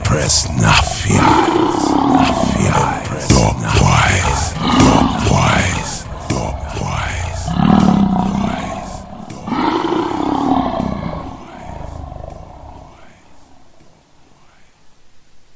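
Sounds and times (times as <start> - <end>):
speech: 0.2 - 3.8
lioness roaring: 0.8 - 3.0, 4.0 - 13.8.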